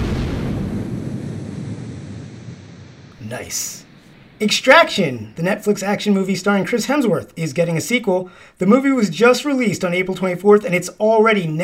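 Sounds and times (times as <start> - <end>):
loud explosion with deep rumbling boom: 0.0 - 5.4
speech: 3.3 - 3.8, 4.4 - 11.6.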